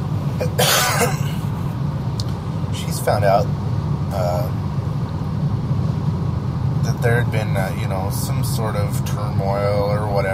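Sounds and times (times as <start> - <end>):
steady low hum: 0.0 - 10.3
person coughing: 0.4 - 1.4
speech: 3.1 - 4.7, 7.0 - 10.3.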